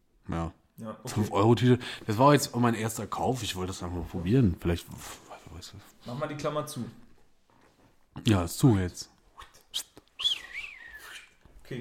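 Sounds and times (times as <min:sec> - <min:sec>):
speech: 0:00.3 - 0:07.0, 0:08.2 - 0:09.1, 0:09.7 - 0:09.9
person whistling a sustained wavering note: 0:09.7 - 0:11.4.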